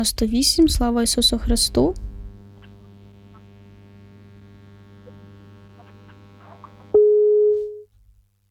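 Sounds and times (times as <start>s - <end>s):
speech: 0.0s - 2.1s
low electrical hum on a phone line: 0.0s - 8.4s
phone busy-tone beep from a dropped call: 7.0s - 7.9s.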